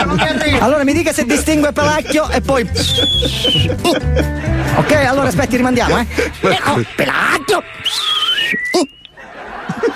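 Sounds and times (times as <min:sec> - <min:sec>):
laughter: 0:00.0 - 0:08.4, 0:09.1 - 0:09.9
speech: 0:00.1 - 0:09.0
sliding whistle tone: 0:02.8 - 0:03.7, 0:07.8 - 0:09.2.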